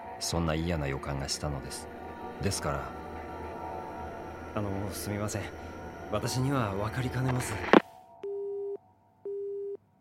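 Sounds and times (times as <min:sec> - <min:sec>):
speech: 0:00.2 - 0:03.0, 0:04.5 - 0:07.8
telephone busy tone after a call is disconnected: 0:08.3 - 0:09.8.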